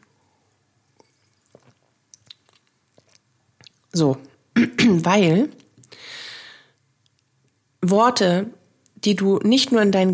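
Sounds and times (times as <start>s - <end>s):
person sipping and swallowing water: 1.0s - 3.9s
speech: 4.0s - 4.3s, 5.1s - 5.6s, 7.8s - 10.1s.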